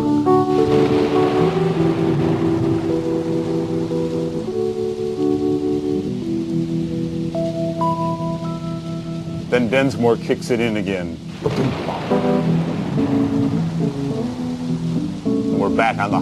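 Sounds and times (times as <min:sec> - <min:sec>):
slow sustained electric keyboard notes: 0:00.0 - 0:16.2
steady rain in a thunderstorm sound effect: 0:00.0 - 0:16.2
speech: 0:09.6 - 0:11.8, 0:15.8 - 0:16.2.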